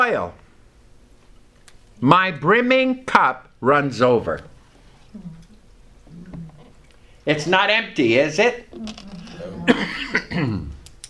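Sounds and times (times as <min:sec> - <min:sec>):
speech: 0:00.0 - 0:00.4, 0:02.0 - 0:04.5, 0:05.2 - 0:05.4, 0:07.2 - 0:10.8
person coughing from a tickle in the throat: 0:09.2 - 0:10.8
throat clearing: 0:09.2 - 0:10.8.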